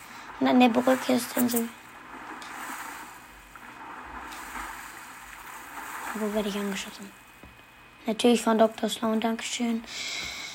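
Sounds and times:
soft splashes and swishes of video game character swimming: 0:00.0 - 0:08.0
video game river rushing water: 0:00.0 - 0:08.0
speech: 0:00.4 - 0:01.8, 0:06.2 - 0:07.2, 0:08.0 - 0:10.4.

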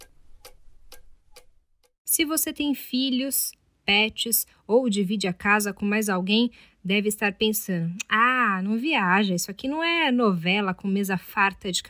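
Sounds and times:
clock ticking: 0:00.0 - 0:01.9
speech: 0:02.2 - 0:11.8.

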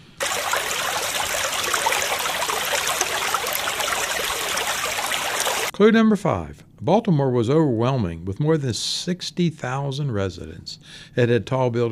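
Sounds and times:
creek water flowing: 0:00.0 - 0:05.8
speech: 0:05.8 - 0:11.8.

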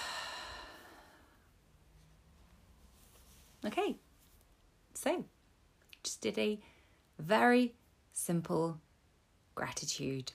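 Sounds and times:
deep breath during a gratitude practice: 0:00.0 - 0:01.6
speech: 0:03.6 - 0:04.1, 0:05.0 - 0:05.4, 0:06.0 - 0:08.8, 0:09.6 - 0:10.3.

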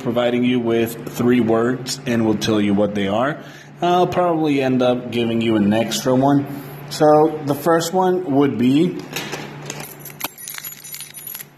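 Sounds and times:
speech: 0:00.0 - 0:09.3
keys jangling: 0:09.6 - 0:11.5.

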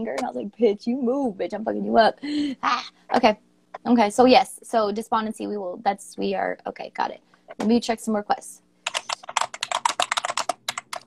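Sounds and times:
speech: 0:00.0 - 0:08.6
rapid typing on a computer keyboard: 0:08.9 - 0:11.0.

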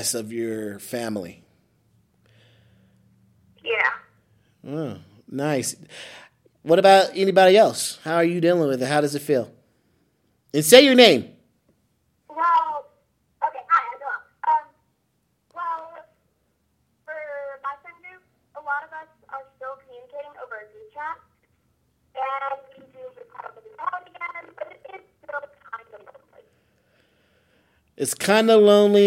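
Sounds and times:
speech: 0:00.0 - 0:01.4, 0:04.6 - 0:09.6, 0:10.5 - 0:11.3, 0:28.0 - 0:29.0
thin narrow-band garbled voice over a phone line: 0:12.3 - 0:14.8, 0:15.6 - 0:16.2, 0:17.1 - 0:21.3, 0:22.2 - 0:26.5.

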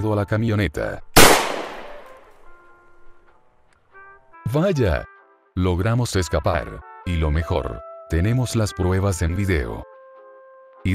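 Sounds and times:
speech: 0:00.0 - 0:01.1, 0:04.5 - 0:09.9
gunshot fired during an escape toward a van: 0:01.2 - 0:02.3.

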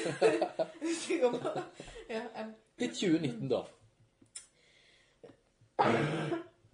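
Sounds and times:
laughter: 0:00.0 - 0:02.2
speech: 0:00.0 - 0:03.8, 0:05.8 - 0:06.5
faint throat clearing: 0:05.8 - 0:06.6
loud harsh cough: 0:05.8 - 0:06.6.

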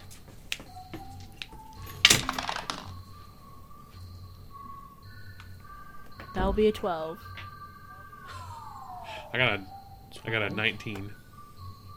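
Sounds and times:
dice rattling and clattering across a hard tabletop: 0:02.0 - 0:03.0
speech: 0:06.4 - 0:07.3, 0:09.3 - 0:11.2.

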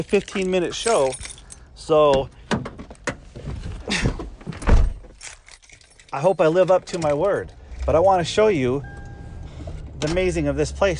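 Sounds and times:
speech: 0:00.0 - 0:02.4, 0:06.1 - 0:09.0, 0:10.0 - 0:10.9
door thud: 0:04.5 - 0:05.2.

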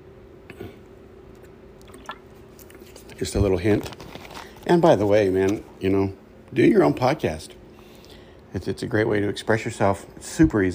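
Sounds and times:
low steady hum: 0:00.0 - 0:10.7
person gulping water: 0:00.5 - 0:02.8
speech: 0:03.2 - 0:04.0, 0:04.7 - 0:07.6, 0:08.5 - 0:10.7.

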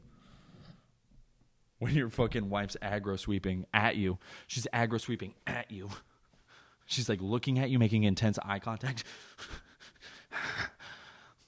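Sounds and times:
speech: 0:01.8 - 0:06.1, 0:06.9 - 0:09.6
person imitating a woman's heavy intense breathing: 0:09.0 - 0:11.4.

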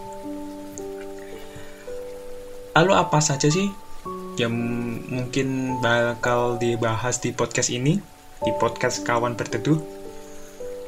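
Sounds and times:
steady rain: 0:00.0 - 0:10.8
speech: 0:02.8 - 0:03.8, 0:04.4 - 0:10.0.

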